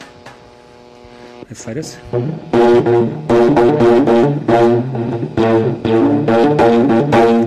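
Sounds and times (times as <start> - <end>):
sensor-amplified buzz of a fake mosquito wing: 0.0 - 7.4
speech: 1.5 - 7.4.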